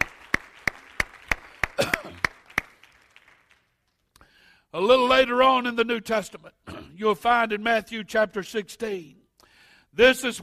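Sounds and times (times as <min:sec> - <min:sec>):
audience clapping in praise during a sermon: 0:00.0 - 0:04.1
speech: 0:04.7 - 0:09.2, 0:10.0 - 0:10.4.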